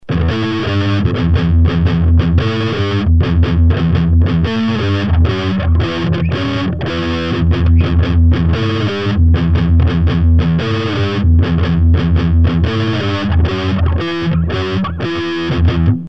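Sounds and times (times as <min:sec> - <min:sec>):
metal guitar amplifier tone on Roland CUBE-30: 0:00.0 - 0:16.0.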